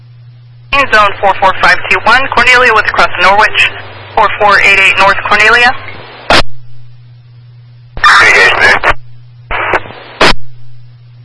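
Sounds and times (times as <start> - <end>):
steady low electrical hum: 0.0 - 11.2
crackling radio transmission static: 0.7 - 6.6, 8.0 - 10.7
speech: 0.8 - 5.9.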